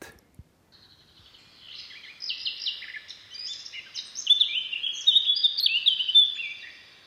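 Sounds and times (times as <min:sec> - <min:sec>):
Eurasian blackcap singing a rapid warbling song: 0:00.7 - 0:07.0.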